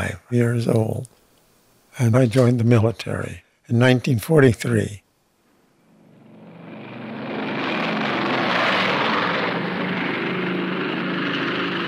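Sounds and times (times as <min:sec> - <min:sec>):
speech: 0:00.3 - 0:01.1, 0:02.0 - 0:05.0
B-29 bomber propeller engines droning: 0:05.9 - 0:11.8.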